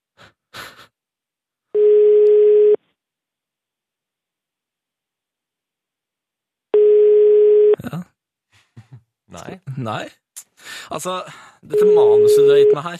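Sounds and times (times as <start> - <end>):
telephone busy signal on a call to the Netherlands: 1.8 - 2.8, 6.8 - 7.8, 11.8 - 12.8
speech: 9.4 - 12.9.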